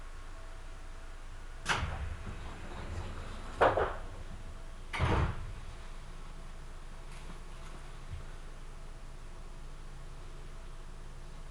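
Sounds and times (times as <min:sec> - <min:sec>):
steady low mechanical rumble: 0:00.0 - 0:11.4
train doors sliding shut with whooshing thuds: 0:01.6 - 0:05.9.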